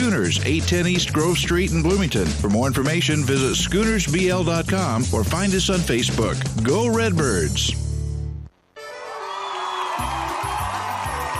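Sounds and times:
speech: 0.2s - 7.8s
big crowd roaring and cheering: 8.9s - 11.3s.

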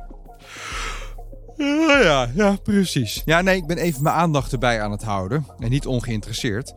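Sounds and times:
human yawn: 0.4s - 2.0s
speech: 1.6s - 6.7s.

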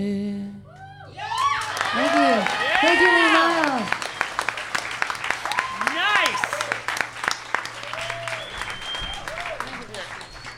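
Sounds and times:
crowd applauding: 1.0s - 10.5s
sharp whistles: 3.9s - 4.6s, 7.8s - 10.5s.

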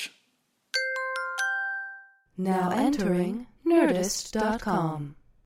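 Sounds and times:
bright bell chimes: 0.8s - 2.2s
speech: 2.4s - 5.2s.

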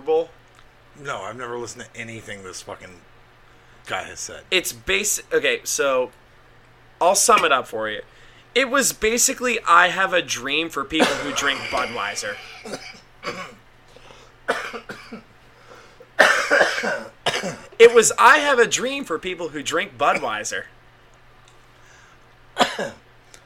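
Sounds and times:
speech: 1.0s - 3.1s, 3.9s - 6.2s, 7.0s - 13.4s, 17.8s - 20.8s, 22.8s - 23.0s
harsh coughing fit: 11.0s - 13.6s, 14.5s - 15.3s, 16.2s - 17.8s, 22.6s - 23.0s.

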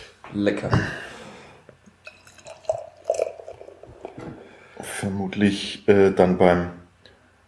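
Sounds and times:
speech: 0.3s - 1.1s, 5.0s - 6.8s
wheat beer pouring into a glass: 2.0s - 4.5s.

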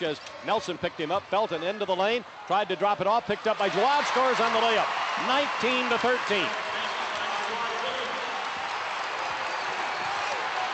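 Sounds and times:
speech: 0.0s - 6.6s
large basketball arena crowd roaring and cheering: 3.4s - 10.7s.

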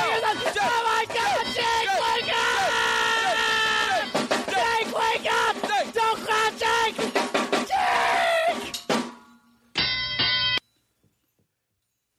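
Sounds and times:
excited shouting voices: 0.0s - 8.7s
loud sustained bell sound effect: 9.8s - 10.6s.

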